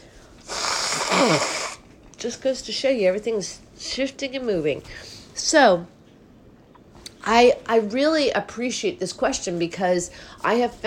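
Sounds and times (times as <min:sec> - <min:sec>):
person sneezing: 0:00.4 - 0:01.8
speech: 0:01.2 - 0:01.5, 0:02.2 - 0:06.0, 0:07.2 - 0:10.8.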